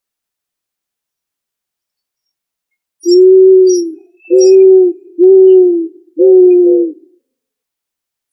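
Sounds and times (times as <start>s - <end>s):
pigeon cooing: 3.0s - 7.1s.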